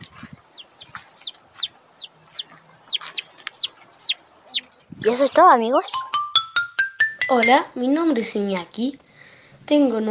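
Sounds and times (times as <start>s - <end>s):
hens clucking softly: 0.0s - 6.0s
chick peeping: 0.0s - 6.1s
speech: 5.0s - 6.1s, 7.3s - 9.0s, 9.7s - 10.0s.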